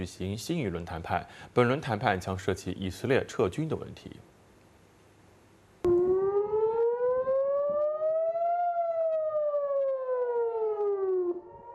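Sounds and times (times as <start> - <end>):
speech: 0.0 - 4.3
air raid siren wailing in northern Israel during cross-border fire from Lebanon: 5.9 - 11.7.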